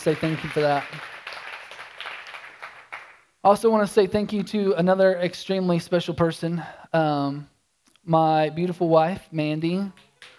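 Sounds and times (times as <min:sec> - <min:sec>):
speech: 0:00.0 - 0:01.1, 0:03.4 - 0:10.0
audience applause: 0:00.0 - 0:03.2.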